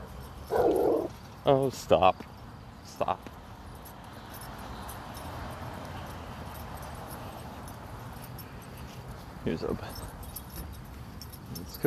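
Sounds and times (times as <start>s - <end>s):
dog barking: 0.5s - 1.1s
speech: 1.5s - 2.3s, 2.9s - 3.4s, 9.4s - 10.0s, 11.7s - 11.8s.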